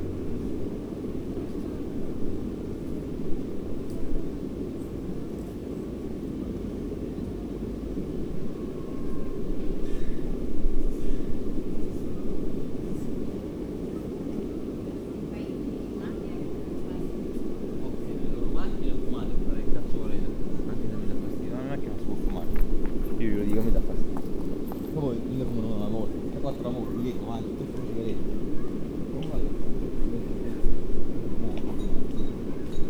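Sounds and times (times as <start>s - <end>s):
steady low rumble of traffic in a city park: 0.0s - 32.8s
voices in a city park: 11.9s - 32.8s.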